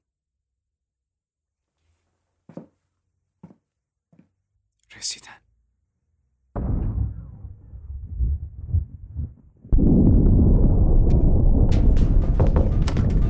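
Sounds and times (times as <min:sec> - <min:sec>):
speech: 0:05.0 - 0:05.5
deep heavy explosions from an air strike on a civilian area: 0:06.6 - 0:13.2
sustained roaring rumble with sharp crackles after a detonation: 0:06.6 - 0:13.2.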